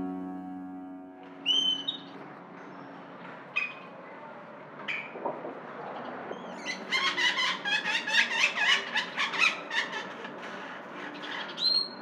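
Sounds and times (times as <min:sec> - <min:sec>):
great-tailed grackle calls: 0:01.5 - 0:02.1, 0:06.3 - 0:12.0.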